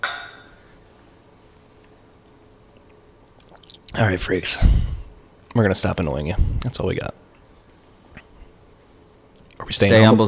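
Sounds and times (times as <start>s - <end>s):
glasses clinking in a toast over whiskey: 0.0s - 0.5s
speech: 4.0s - 5.0s, 5.6s - 7.2s, 9.7s - 10.2s.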